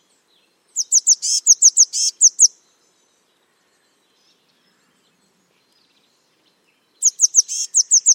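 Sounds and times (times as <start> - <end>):
Eurasian blue tit ticking calls and buzzy churrs: 0.8 - 2.6, 7.0 - 8.1.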